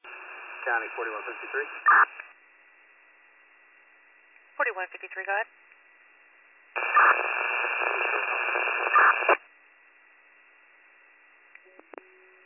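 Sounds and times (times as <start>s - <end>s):
harsh crackling radio static over dispatch transmission: 0.0s - 2.4s, 6.8s - 9.4s
speech: 0.6s - 2.3s, 4.6s - 5.7s.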